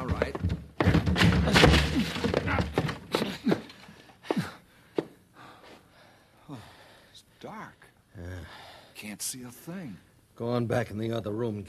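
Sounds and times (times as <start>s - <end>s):
men ramming shoulders into a stuck door to break it down: 0.0s - 3.4s
men grunting and straining: 0.8s - 4.7s
speech: 9.3s - 11.6s.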